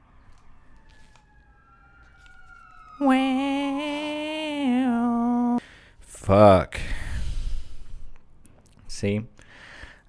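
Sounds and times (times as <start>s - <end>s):
siren passing outside: 0.0s - 5.6s
speech: 3.0s - 3.5s, 6.3s - 6.9s, 9.0s - 9.6s.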